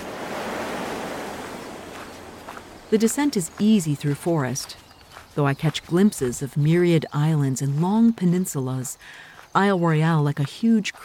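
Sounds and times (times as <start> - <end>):
waves washing against rocks on a lakeshore: 0.0 - 2.5
wind rushing across a lakeshore: 0.0 - 2.9
speech: 2.9 - 4.8, 5.4 - 11.0.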